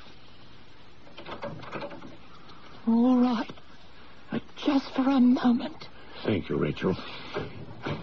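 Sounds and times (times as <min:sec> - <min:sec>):
steady hiss: 0:00.0 - 0:08.0
door opening and closing: 0:01.0 - 0:02.2, 0:07.2 - 0:08.0
speech: 0:02.9 - 0:03.6, 0:04.7 - 0:07.6.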